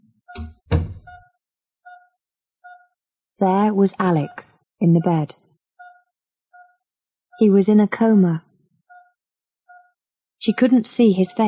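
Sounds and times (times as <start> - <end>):
quiet electronic beeps: 0.3 - 1.3, 1.9 - 2.1, 2.7 - 3.0, 4.0 - 6.8, 8.9 - 11.4
speech: 0.4 - 0.6, 3.4 - 5.4, 7.4 - 8.4, 10.4 - 11.4
door closing gently with a latch click and thump: 0.4 - 1.2.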